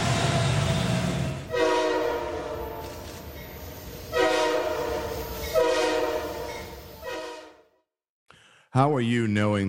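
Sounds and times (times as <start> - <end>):
low rumble of rolling train: 0.0 - 7.7
train horn blasts: 1.4 - 3.2, 4.1 - 7.8
speech: 8.8 - 9.6.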